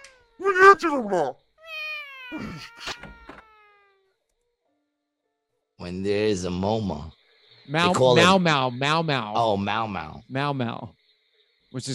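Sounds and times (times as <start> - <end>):
speech: 0.5 - 1.4, 2.3 - 3.0, 5.8 - 11.0, 11.7 - 11.9
two cats meowing and yowling at each other: 1.6 - 4.1.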